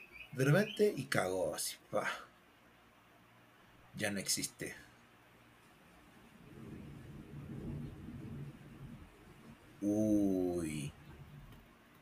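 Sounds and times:
speech: 0:00.3 - 0:02.3, 0:04.0 - 0:04.9, 0:09.8 - 0:11.0
thunder rumbling during a rainstorm: 0:05.9 - 0:12.0.

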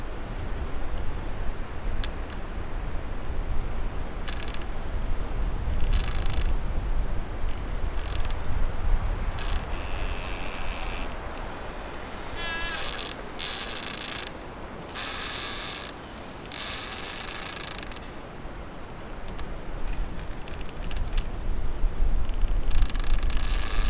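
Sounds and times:
wind rushing through a small wood: 0:00.0 - 0:23.8
rubbing tree trunks creaking and scraping: 0:04.2 - 0:04.8, 0:05.7 - 0:18.3, 0:19.2 - 0:21.6, 0:22.2 - 0:23.8.

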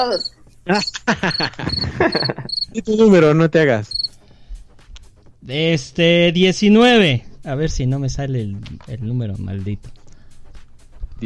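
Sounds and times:
cricket chirping: 0:00.0 - 0:02.8, 0:03.9 - 0:04.2
speech: 0:00.0 - 0:04.2, 0:05.4 - 0:10.0
laughter: 0:00.7 - 0:02.6.

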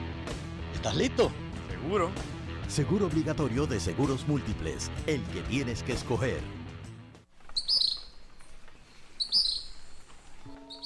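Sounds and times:
speech: 0:00.8 - 0:06.6
soft outdoor hiss: 0:07.3 - 0:10.8
gray kingbird chirping: 0:07.4 - 0:10.8.

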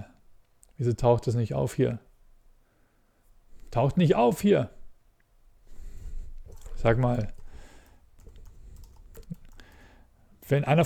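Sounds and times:
speech: 0:00.8 - 0:02.1, 0:03.7 - 0:04.8, 0:06.8 - 0:07.4, 0:10.5 - 0:10.8
typing on a computer keyboard: 0:06.4 - 0:09.9.

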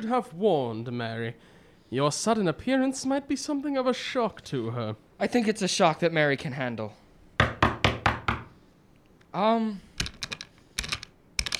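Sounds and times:
speech: 0:00.0 - 0:07.0, 0:09.3 - 0:09.9
knocking on a door: 0:07.4 - 0:08.5.

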